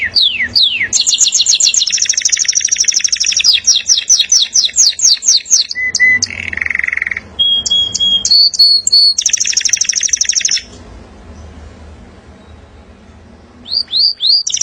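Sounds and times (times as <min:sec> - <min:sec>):
local canary singing rolling trills: 0:00.0 - 0:10.8, 0:12.3 - 0:14.6.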